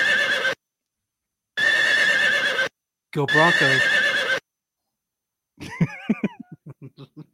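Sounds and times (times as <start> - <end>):
horse neighing: 0.0 - 0.6, 1.6 - 2.7, 3.3 - 4.4
speech: 3.1 - 4.0
laughter: 5.6 - 7.3.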